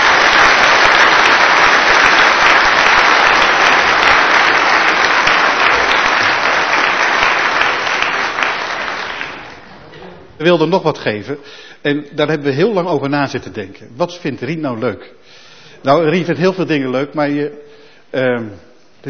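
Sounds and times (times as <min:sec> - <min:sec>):
room full of people applauding: 0:00.0 - 0:09.8
speech: 0:10.4 - 0:19.0.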